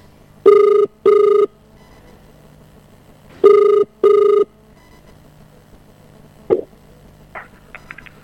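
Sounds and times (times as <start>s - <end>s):
ringback tone of an outgoing telephone call: 0.4s - 2.0s, 3.4s - 4.5s.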